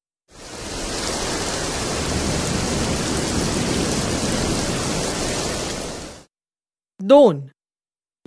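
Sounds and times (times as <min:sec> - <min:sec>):
rain: 0:00.3 - 0:06.3
speech: 0:07.1 - 0:07.5.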